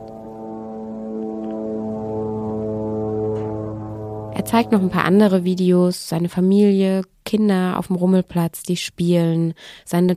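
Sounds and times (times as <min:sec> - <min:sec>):
drone buzzing overhead in the Gaza Strip: 0:00.0 - 0:05.8
speech: 0:04.4 - 0:10.1.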